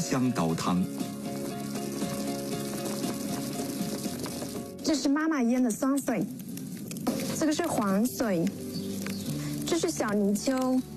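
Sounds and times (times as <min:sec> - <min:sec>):
hot pot broth boiling in a bamboo pot over a bamboo-firewood fire: 0:00.0 - 0:10.9
speech: 0:00.1 - 0:01.2, 0:04.9 - 0:06.4, 0:07.4 - 0:08.6, 0:09.7 - 0:10.9.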